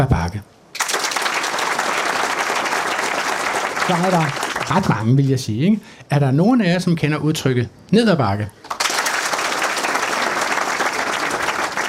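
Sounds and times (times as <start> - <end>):
speech: 0.0 - 0.5, 3.9 - 8.8
audience applause: 0.8 - 5.1, 8.7 - 11.8.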